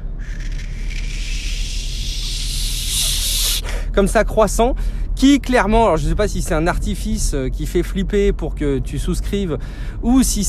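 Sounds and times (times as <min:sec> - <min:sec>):
person vocally imitating a breathy feedback-like blower hiss: 0:00.2 - 0:03.9
speech: 0:04.0 - 0:10.4.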